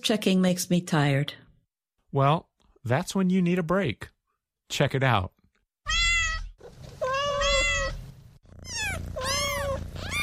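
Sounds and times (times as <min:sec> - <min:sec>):
speech: 0:00.0 - 0:01.4, 0:02.1 - 0:04.1, 0:04.7 - 0:06.0
cat meowing: 0:05.8 - 0:10.2.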